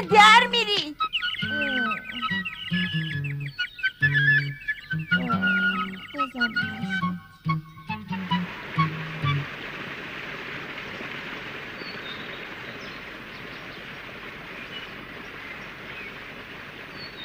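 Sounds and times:
bird chirping: 0.0s - 17.2s
soft rushing hiss: 8.2s - 17.2s.

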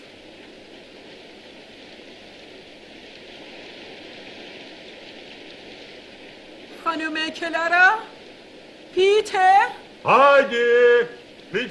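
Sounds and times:
steady rain: 0.0s - 11.7s
speech: 6.9s - 8.1s, 9.0s - 11.7s.

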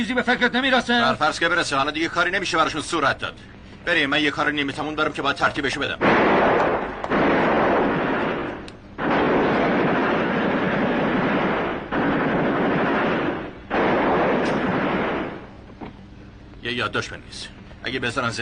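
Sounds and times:
speech: 0.0s - 6.6s, 16.9s - 18.4s
heavy gunfire during a prison riot: 6.0s - 15.6s.

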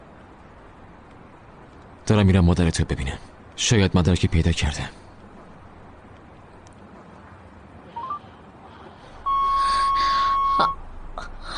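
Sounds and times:
speech: 2.1s - 5.0s
phone dialing beeps: 8.0s - 8.2s, 9.2s - 10.8s.

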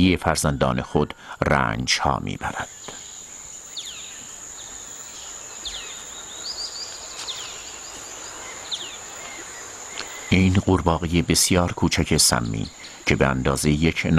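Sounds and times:
speech: 0.0s - 3.0s, 10.3s - 14.1s
steady high insect drone in Costa Rica rainforest: 2.1s - 14.1s
short chirping calls: 2.7s - 10.8s, 12.2s - 13.4s.

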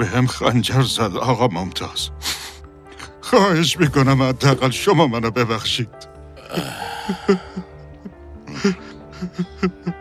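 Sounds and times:
speech: 0.0s - 2.3s, 3.3s - 7.7s, 8.6s - 10.0s
man crying and sobbing with shaky cries and catching breaths: 6.4s - 10.0s.

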